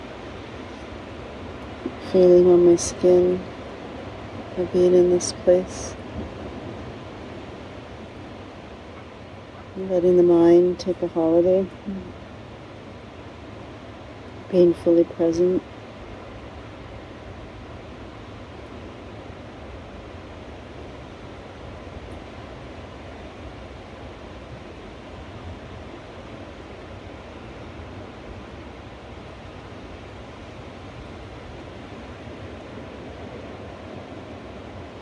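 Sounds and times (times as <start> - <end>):
ocean surf washing on the shore: 0.0 - 35.0
speech: 2.0 - 3.5, 4.6 - 6.0, 9.8 - 12.2, 14.5 - 15.7.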